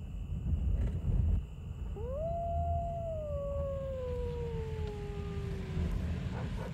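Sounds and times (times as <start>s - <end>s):
low rumbling background: 0.0s - 6.7s
wolf howling: 1.9s - 6.7s.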